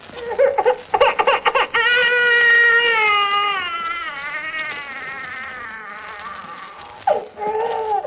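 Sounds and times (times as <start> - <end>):
baby bawling on an old phonograph record: 0.0 - 8.0.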